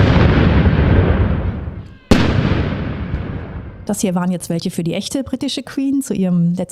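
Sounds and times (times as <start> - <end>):
cannon salute blasts: 0.0 - 4.3
speech: 3.9 - 6.7.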